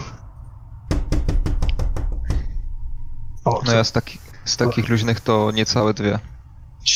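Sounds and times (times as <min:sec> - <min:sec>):
low hum: 0:00.0 - 0:06.9
knocking on the main door: 0:00.9 - 0:02.6
speech: 0:03.5 - 0:06.9.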